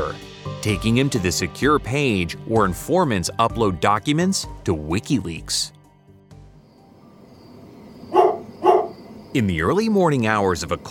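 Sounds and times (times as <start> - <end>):
speech: 0.1 - 5.8, 9.3 - 10.8
dog barking: 8.1 - 9.0.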